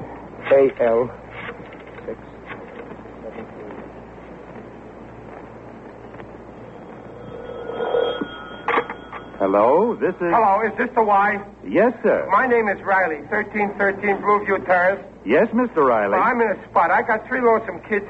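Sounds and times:
steady low hiss on a telephone line: 0.0s - 18.0s
speech: 0.5s - 1.2s, 2.1s - 2.3s, 9.4s - 18.0s
telephone ringing over the line on a call: 6.7s - 10.5s.

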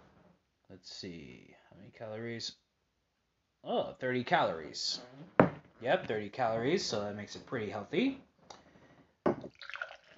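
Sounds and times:
speech: 0.8s - 2.6s, 3.6s - 8.3s
beer pouring into a pilsner glass: 9.3s - 10.1s.

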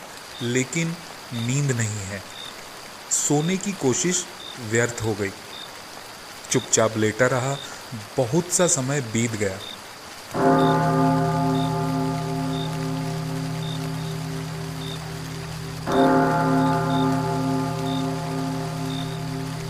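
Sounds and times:
steady hiss of rain: 0.0s - 19.6s
speech: 0.4s - 2.4s, 3.3s - 5.5s, 6.5s - 11.0s
large bell struck on a rainy night: 10.4s - 19.6s.

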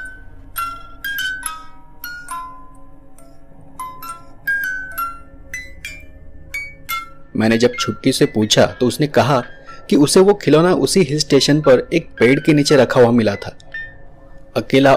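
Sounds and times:
faint low hum: 0.0s - 14.9s
wind-up wooden music box playing a slow tinkling melody: 0.0s - 14.9s
speech: 7.4s - 13.6s, 14.6s - 14.9s.

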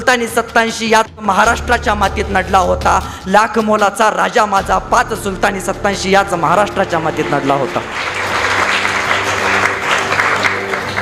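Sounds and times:
speech: 0.0s - 8.2s
audience clapping: 7.2s - 10.9s.

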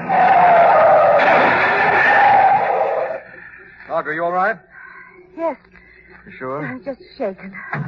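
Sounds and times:
car tires screeching in a skid to avoid collision: 0.0s - 3.2s
speech: 4.0s - 7.8s.

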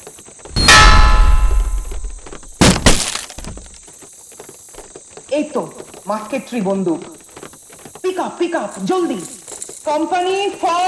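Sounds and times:
hammer breaking the lock of a magazine room: 0.5s - 3.8s
loud metallic clang: 0.5s - 3.8s
speech: 5.3s - 7.2s, 8.2s - 10.8s.

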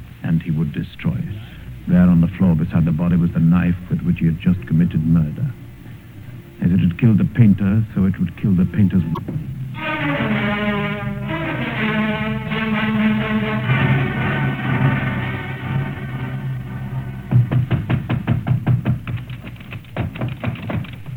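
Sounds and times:
speech: 0.3s - 5.6s, 6.6s - 10.4s
sustained droning musical tones: 1.7s - 18.2s
loud sharp knocks hammering on a door: 17.3s - 21.1s.

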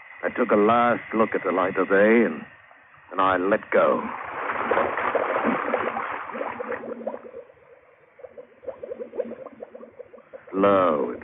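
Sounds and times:
speech: 0.2s - 4.7s, 10.6s - 11.2s
air bubbles from a diving helmet valve gurgling underwater: 4.2s - 11.2s.

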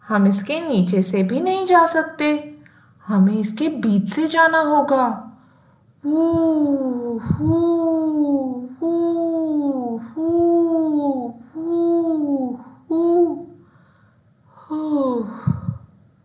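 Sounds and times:
speech: 0.1s - 2.5s, 3.1s - 5.3s, 6.0s - 10.6s
short breaths: 2.6s - 3.0s, 13.6s - 14.3s
voice imitating howling wind of a whirling snowstorm: 6.0s - 13.5s, 14.6s - 15.8s.

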